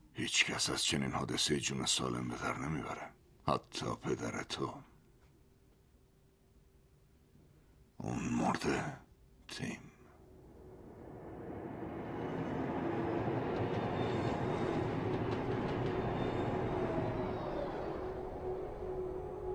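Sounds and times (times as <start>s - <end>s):
speech: 0.2s - 4.9s, 8.0s - 9.9s
train rumbling past on rails: 10.4s - 19.4s
faint metallic squeal: 10.7s - 19.2s.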